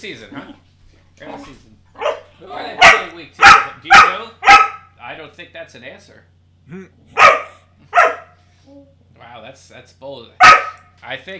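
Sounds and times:
speech: 0:00.0 - 0:00.6, 0:01.2 - 0:01.8, 0:02.4 - 0:04.4, 0:05.1 - 0:07.4, 0:08.7 - 0:11.3
loud sharp dog barks: 0:02.0 - 0:05.0, 0:07.1 - 0:08.4, 0:10.4 - 0:10.9.

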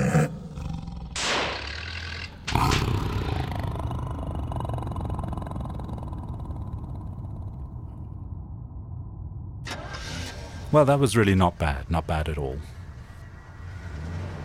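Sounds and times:
tiger roaring and growling: 0:00.0 - 0:08.0
speech: 0:10.7 - 0:12.8.

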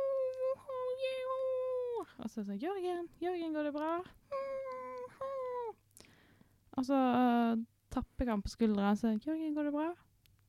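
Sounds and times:
voice imitating a man whimpering in his sleep during a nightmare: 0:00.0 - 0:02.0, 0:04.3 - 0:05.8
speech: 0:02.2 - 0:04.2, 0:06.8 - 0:10.0.

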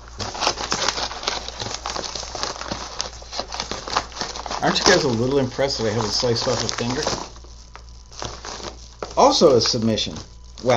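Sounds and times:
tightly sealed stiff package being torn open: 0:00.0 - 0:09.8
speech: 0:04.6 - 0:07.3, 0:09.3 - 0:10.7.

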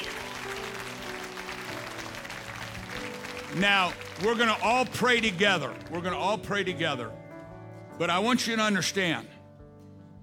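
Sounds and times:
audience applauding: 0:00.0 - 0:06.7
speech: 0:03.6 - 0:07.2, 0:08.0 - 0:09.3.

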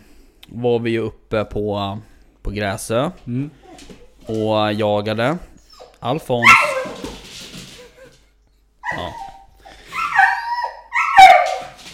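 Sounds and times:
speech: 0:00.5 - 0:06.6
dachshund whimpering and yipping: 0:05.6 - 0:11.7.

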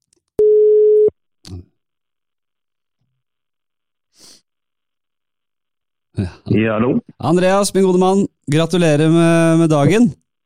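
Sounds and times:
telephone ringback tone as a call is placed: 0:00.4 - 0:01.1
speech: 0:06.2 - 0:10.2.

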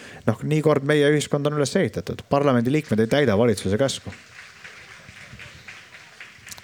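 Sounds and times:
speech: 0:00.2 - 0:04.3
faint applause from a neighbouring stage: 0:02.9 - 0:06.6.

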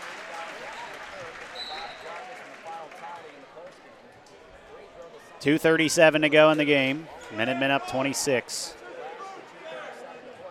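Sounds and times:
large crowd clapping and cheering in an arena: 0:00.0 - 0:03.6
speech: 0:05.4 - 0:08.8.

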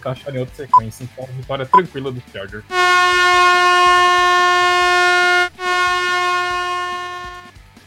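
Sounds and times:
speech: 0:00.0 - 0:03.5
sustained horn blast with a rich harmonic tone: 0:02.7 - 0:07.5.

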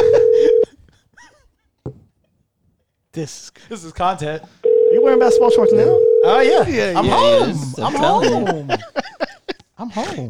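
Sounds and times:
laughter: 0:00.0 - 0:00.6, 0:06.6 - 0:09.7
ringback tone from an outgoing phone call: 0:00.0 - 0:00.7, 0:04.6 - 0:06.6
speech: 0:03.2 - 0:09.0, 0:09.8 - 0:10.2.

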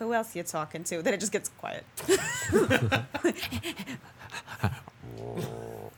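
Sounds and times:
speech: 0:00.1 - 0:04.8
dog groaning under a table in a restaurant: 0:05.0 - 0:05.9.

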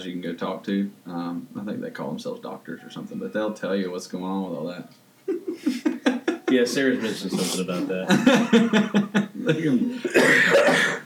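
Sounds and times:
speech: 0:00.0 - 0:05.9, 0:06.5 - 0:11.0
laughter: 0:05.3 - 0:10.4
person coughing: 0:06.8 - 0:08.6, 0:09.6 - 0:11.0.

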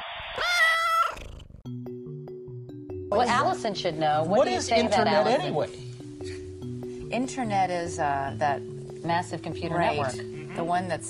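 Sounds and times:
cat meowing: 0:00.4 - 0:01.4
speech: 0:03.1 - 0:05.9, 0:07.1 - 0:11.0.

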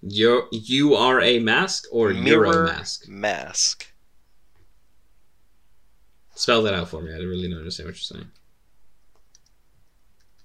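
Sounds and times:
speech: 0:00.0 - 0:03.9, 0:06.4 - 0:08.4
low hum: 0:00.0 - 0:10.4
typing on a computer keyboard: 0:09.1 - 0:09.6, 0:10.2 - 0:10.4.

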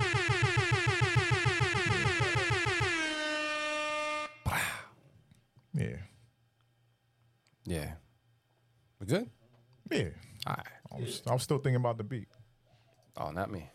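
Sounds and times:
air horn blaring: 0:00.0 - 0:04.5
speech: 0:07.6 - 0:08.0, 0:09.0 - 0:12.4, 0:13.2 - 0:13.7.

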